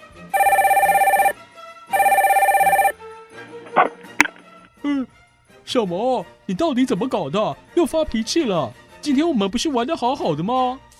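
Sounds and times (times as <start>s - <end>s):
home telephone ringing with trilling bursts: 0.4s - 2.9s
speech: 5.7s - 10.9s.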